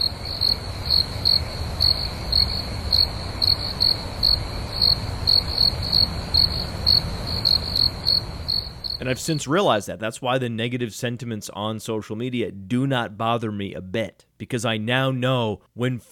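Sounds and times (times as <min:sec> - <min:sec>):
crickets chirping: 0:00.0 - 0:09.6
low hum: 0:00.0 - 0:10.0
speech: 0:09.0 - 0:16.1.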